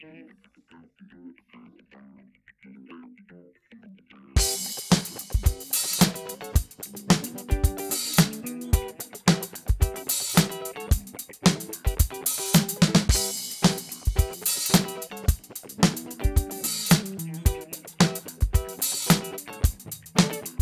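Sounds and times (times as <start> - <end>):
clean electric guitar on middle pickup: 4.4 - 20.6.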